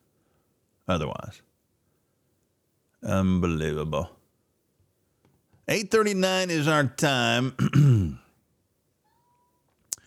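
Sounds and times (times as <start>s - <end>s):
speech: 0.9s - 1.5s, 3.0s - 4.2s, 5.7s - 8.2s
cat meowing: 9.0s - 9.7s
faint thin tone: 9.0s - 9.7s.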